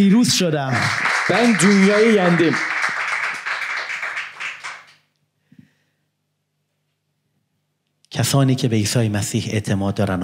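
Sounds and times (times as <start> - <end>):
speech: 0.0 - 2.7, 8.2 - 10.2
group of people clapping in applause: 0.7 - 5.1.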